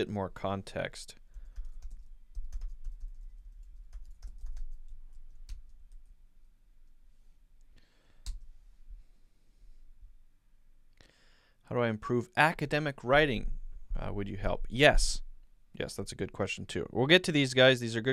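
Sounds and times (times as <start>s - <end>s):
speech: 0.0s - 1.2s, 11.7s - 15.2s, 15.8s - 18.1s
typing on a computer keyboard: 1.4s - 6.1s.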